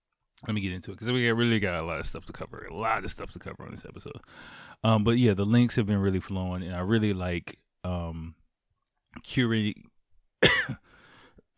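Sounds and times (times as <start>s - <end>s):
speech: 0.4s - 8.4s, 9.2s - 10.9s
cough and burp at the same time: 10.4s - 10.8s.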